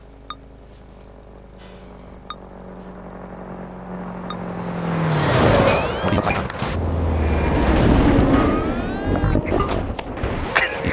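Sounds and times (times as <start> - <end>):
vehicle engine rumbling in a video game: 0.0 - 10.9
vehicles colliding and scraping in a video game: 4.0 - 10.9.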